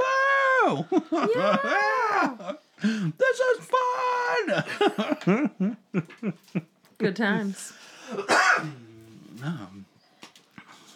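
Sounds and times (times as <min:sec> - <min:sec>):
laughter: 0:00.6 - 0:02.7, 0:04.4 - 0:06.7
speech: 0:00.7 - 0:09.9
man with a throat irritation clearing his throat: 0:08.1 - 0:09.0.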